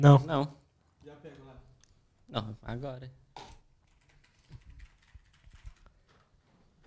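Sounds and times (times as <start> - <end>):
speech: 0.0 - 0.6, 2.3 - 3.5
keyboard typing: 3.5 - 6.2.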